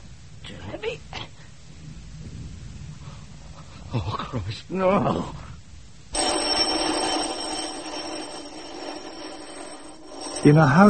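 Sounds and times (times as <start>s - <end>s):
speech: 0.5s - 1.4s, 3.9s - 5.5s, 10.4s - 10.8s
loud electric doorbell ringing continuously: 6.2s - 10.8s.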